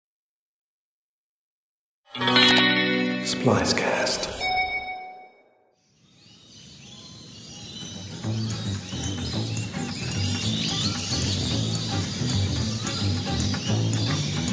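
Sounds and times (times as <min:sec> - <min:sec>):
speech: 0:02.1 - 0:04.4
dense chorus of African birds calling and chirping in a rainforest aviary: 0:05.9 - 0:14.5.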